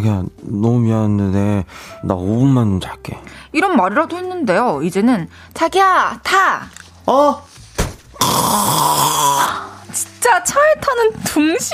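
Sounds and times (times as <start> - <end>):
speech: 0.0 - 7.5, 8.3 - 11.7
voice imitating snoring: 8.2 - 9.7.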